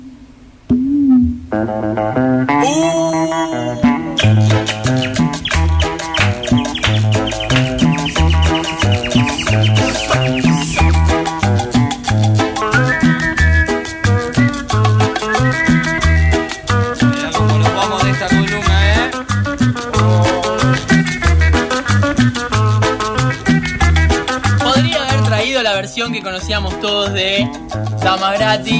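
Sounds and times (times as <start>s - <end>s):
1972 Peruvian instrumental cumbia recording: 0.6s - 28.7s
speech: 1.6s - 3.8s, 26.0s - 28.7s
bird chirps: 3.8s - 11.8s.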